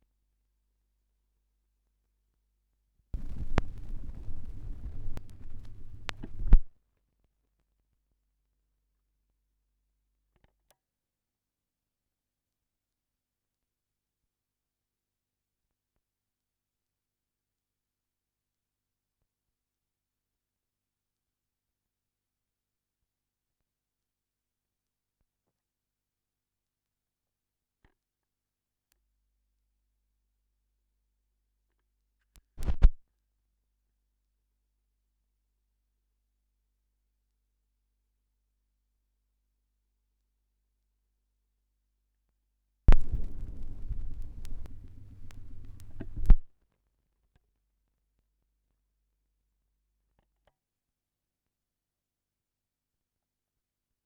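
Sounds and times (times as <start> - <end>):
78rpm record surface noise: 3.2 - 6.6, 42.9 - 46.4.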